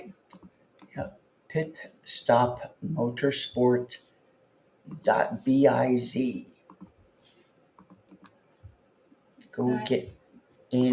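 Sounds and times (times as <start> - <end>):
speech: 1.0 - 4.1, 4.9 - 6.5, 9.6 - 10.9
typing on a computer keyboard: 7.8 - 8.4.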